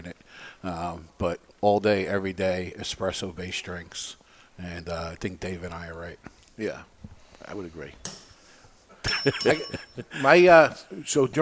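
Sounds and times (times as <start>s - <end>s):
speech: 0.4s - 8.2s, 9.0s - 11.4s
crushed and bent bicycle bell ringing: 9.0s - 10.1s.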